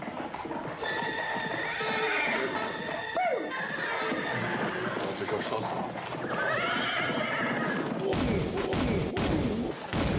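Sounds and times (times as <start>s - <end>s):
broad constant noise: 0.0s - 10.1s
hooves of a horse-drawn carriage clip-clopping: 0.0s - 10.1s
horse neighing: 0.7s - 8.0s.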